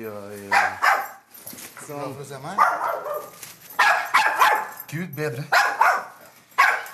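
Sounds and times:
speech: 0.0 - 0.8, 1.9 - 3.4, 4.9 - 5.7
dog barking loudly: 0.5 - 1.3, 2.5 - 4.8, 5.5 - 6.9.

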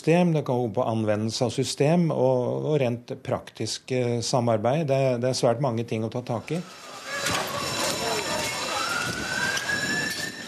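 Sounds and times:
speech: 0.0 - 7.4
busy noisy street background: 6.5 - 10.4
wailing ambulance siren of a passing emergency vehicle: 6.6 - 10.4.

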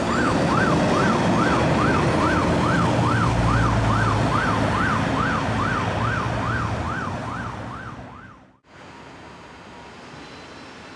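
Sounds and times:
ambulance siren wailing in a rising-and-falling pattern: 0.0 - 8.6
ambulance engine rumble: 0.0 - 10.4.

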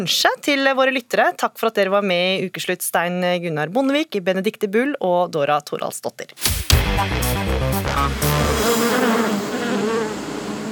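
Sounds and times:
speech: 0.0 - 9.1
short musical phrase: 6.7 - 9.7
honeybees buzzing at Fettsund Norway: 8.3 - 10.6.

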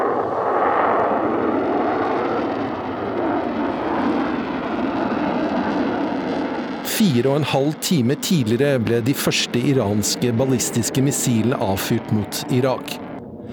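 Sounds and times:
airplane engines roaring while accelerating along a runway toward takeoff: 0.0 - 13.5
speech: 7.0 - 13.5.

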